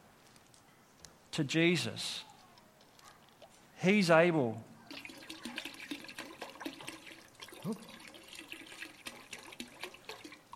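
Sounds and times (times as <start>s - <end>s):
speech: 1.4s - 2.3s, 3.8s - 4.7s, 7.6s - 7.9s
trickling liquid: 3.2s - 3.6s, 4.8s - 10.5s
water being poured in: 4.9s - 10.5s.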